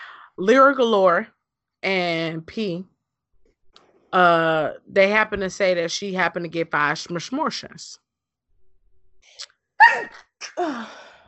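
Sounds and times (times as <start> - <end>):
speech: 0.4 - 2.9, 4.1 - 8.0, 9.3 - 11.0
sharp loud sneeze: 9.8 - 10.6
faint intake of breath: 10.7 - 11.2.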